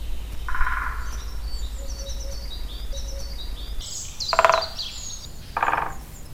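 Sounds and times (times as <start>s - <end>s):
great spotted woodpecker Picoides major calling: 0.4s - 6.3s.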